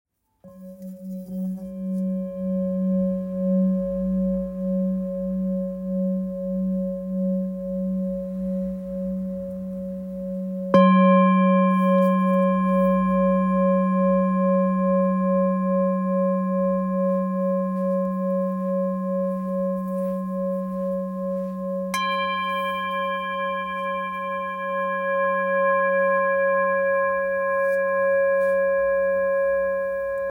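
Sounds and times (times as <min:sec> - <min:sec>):
1.1kg full moon singing bowl in F sharp: 0:00.4 - 0:30.2.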